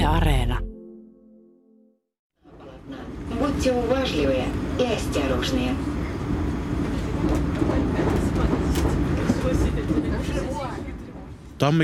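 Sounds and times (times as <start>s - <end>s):
passenger train rumbling from Minsk to Homel in Belarus: 2.7s - 11.6s
speech: 3.6s - 5.9s, 11.6s - 11.8s.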